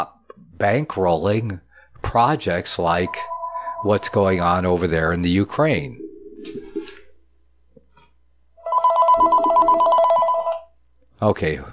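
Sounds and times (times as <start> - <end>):
speech: 0.0 - 6.6, 11.2 - 11.7
telephone ringing with a warbling electronic tone for an incoming call: 3.0 - 4.6, 8.6 - 10.6.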